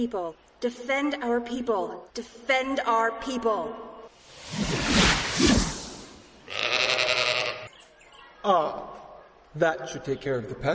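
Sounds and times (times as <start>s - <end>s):
speech: 0.0s - 3.9s, 8.4s - 10.7s
rushing whoosh: 4.2s - 6.4s
sheep bleating: 6.5s - 7.8s.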